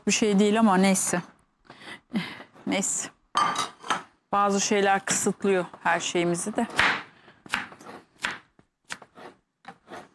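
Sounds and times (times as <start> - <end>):
speech: 0.0 - 3.7, 4.3 - 7.6
knife chopping salad on a cutting board: 6.7 - 10.1
knife scraping on a cutting board: 8.9 - 10.1.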